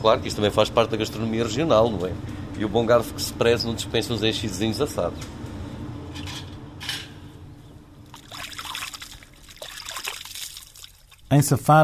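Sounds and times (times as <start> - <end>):
speech: 0.0 - 5.4, 11.3 - 11.8
low hum: 0.0 - 11.8
water trickling and splashing while washing soot off face: 8.0 - 11.3.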